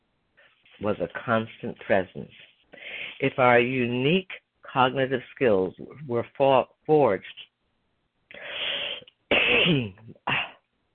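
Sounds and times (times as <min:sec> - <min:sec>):
speech: 0:00.8 - 0:02.5, 0:03.2 - 0:07.5, 0:09.6 - 0:10.1
harsh coughing: 0:08.4 - 0:10.6.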